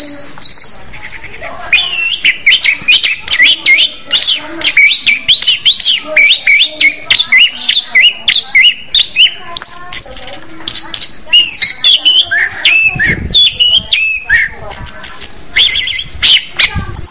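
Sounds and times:
orange-headed thrush fast chattering song: 0:00.0 - 0:17.0.

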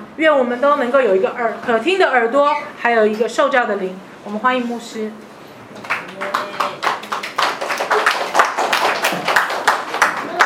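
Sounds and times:
speech: 0:00.2 - 0:06.3
church congregation applauding at a Christmas service: 0:05.8 - 0:10.4.

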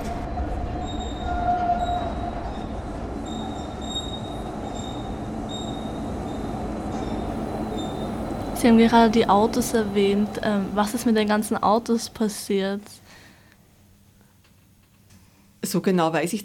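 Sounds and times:
subway train wheel squeal: 0:00.0 - 0:08.6
subway train running on rails: 0:00.0 - 0:13.1
speech: 0:08.6 - 0:13.0, 0:15.7 - 0:16.4.

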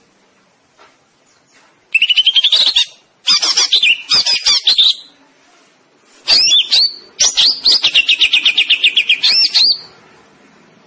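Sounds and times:
greater green leafbird singing chirps and slurred whistles: 0:01.2 - 0:05.2, 0:06.3 - 0:10.0.

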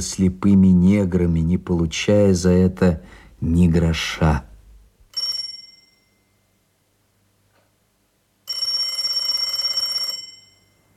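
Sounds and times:
speech: 0:00.0 - 0:04.5
telephone bell ringing: 0:05.1 - 0:06.4, 0:08.5 - 0:10.9.

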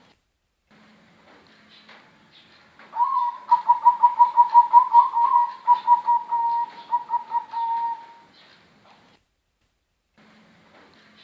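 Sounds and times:
Bangkok type zebra dove cooing song: 0:03.0 - 0:08.3.

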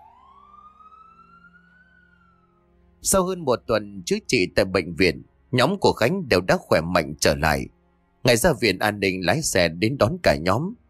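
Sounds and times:
ambulance siren wailing: 0:00.0 - 0:07.6
speech: 0:03.0 - 0:10.8.

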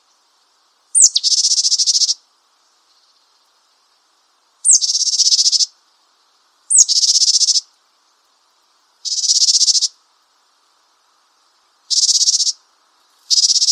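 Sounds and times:
Japanese tit giving coarse buzzy calls: 0:01.0 - 0:02.2, 0:04.6 - 0:05.7, 0:06.7 - 0:07.7, 0:09.0 - 0:10.0, 0:11.9 - 0:12.6, 0:13.3 - 0:13.7.

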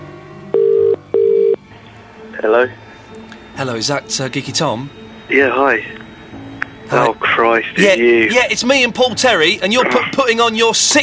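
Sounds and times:
buzzing ringback tone on an outgoing phone call: 0:00.5 - 0:01.6
speech: 0:02.4 - 0:06.0, 0:06.9 - 0:11.0.

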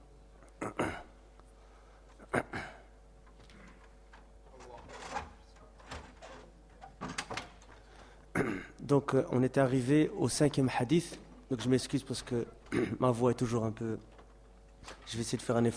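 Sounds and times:
door being pushed shut: 0:04.5 - 0:07.8
speech: 0:08.9 - 0:14.1, 0:14.8 - 0:15.7.

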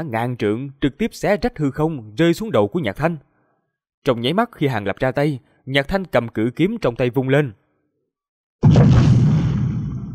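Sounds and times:
speech: 0:00.0 - 0:03.3, 0:04.0 - 0:07.6, 0:08.6 - 0:09.2
loud explosion with deep rumbling roar: 0:08.6 - 0:10.1.

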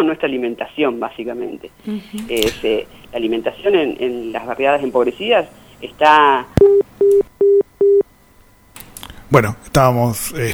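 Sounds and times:
speech: 0:00.0 - 0:07.2, 0:09.3 - 0:10.5
telephone busy tone after a phone call was cut off: 0:06.6 - 0:08.1.

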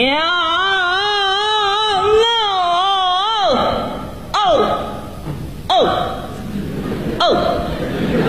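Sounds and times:
person imitating Peking opera old-man role crying: 0:00.4 - 0:05.1, 0:05.7 - 0:06.3
laughter: 0:06.3 - 0:08.2.

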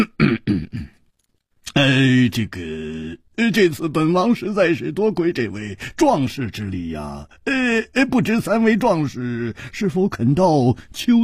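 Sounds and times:
voice imitating a heavy cough: 0:00.0 - 0:01.0
long drawn-out vocal sound: 0:01.6 - 0:03.3
speech: 0:01.8 - 0:11.2.

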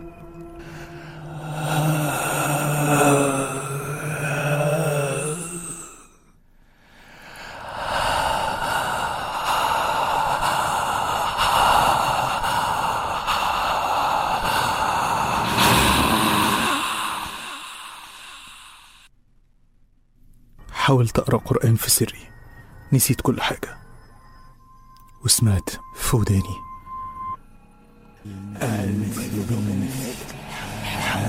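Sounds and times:
heavy breathing as a horror sound effect close to the ear: 0:00.0 - 0:19.1, 0:29.4 - 0:31.2
speech: 0:20.9 - 0:22.3, 0:22.9 - 0:23.8, 0:25.4 - 0:26.7.

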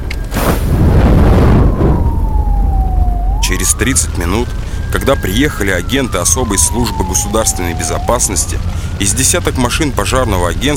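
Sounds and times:
explosion in a burning house: 0:00.4 - 0:03.9
faint steady whine: 0:01.6 - 0:10.7
speech: 0:03.8 - 0:10.7.

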